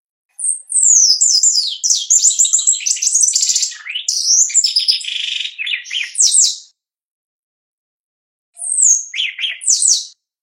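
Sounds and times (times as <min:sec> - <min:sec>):
shiny cowbird song: 0:00.3 - 0:06.8, 0:08.6 - 0:10.2.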